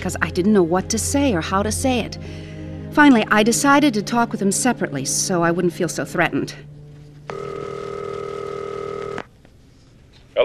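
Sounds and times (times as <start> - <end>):
speech: 0.0 - 7.5
telephone ringing with a steady electronic tone: 7.3 - 9.3.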